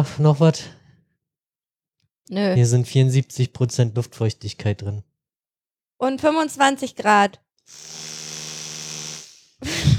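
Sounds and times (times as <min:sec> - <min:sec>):
speech: 0:00.0 - 0:00.8, 0:02.3 - 0:05.1, 0:06.0 - 0:08.1
electric toothbrush buzzing: 0:07.7 - 0:09.8.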